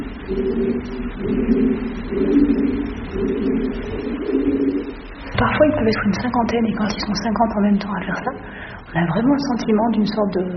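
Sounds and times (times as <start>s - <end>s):
pigeons cooing in a distant cave chamber: 0.0s - 5.2s
speech: 0.3s - 10.5s.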